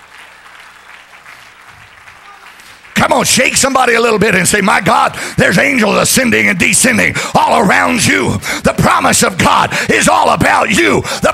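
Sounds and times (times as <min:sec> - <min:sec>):
church congregation clapping hands: 0:00.0 - 0:06.2
speech: 0:03.1 - 0:11.3.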